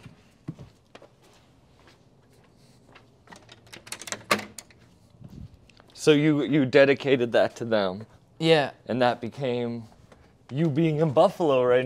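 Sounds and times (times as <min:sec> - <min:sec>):
footsteps on a hard floor: 0:00.0 - 0:03.2
door being locked with metallic clicks and a clunk: 0:03.4 - 0:04.7
speech: 0:06.0 - 0:09.9, 0:10.5 - 0:11.8.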